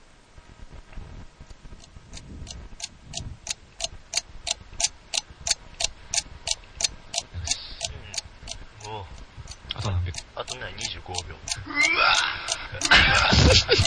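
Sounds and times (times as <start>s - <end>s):
homemade start-signal jingle of clock-like ticks: 9.8s - 13.8s
laughter: 11.6s - 13.8s.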